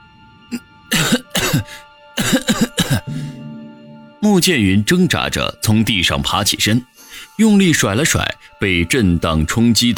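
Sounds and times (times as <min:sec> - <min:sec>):
speech: 0:00.5 - 0:01.7, 0:04.2 - 0:09.9
person coughing from inhaling dust and mouldy air: 0:00.9 - 0:03.4.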